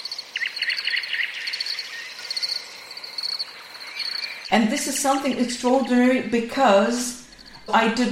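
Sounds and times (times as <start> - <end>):
field crickets trilling: 0.0 - 4.5, 7.1 - 8.1
thrush nightingale singing: 0.0 - 4.5, 7.1 - 8.1
speech: 4.5 - 8.1.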